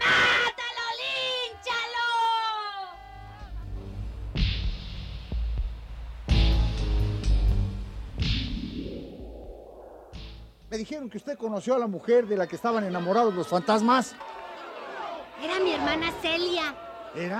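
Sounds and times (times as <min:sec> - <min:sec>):
woman screaming and wailing: 0:00.0 - 0:03.5
deep throbbing thuds: 0:04.1 - 0:10.7
speech: 0:10.8 - 0:14.3, 0:15.8 - 0:17.3.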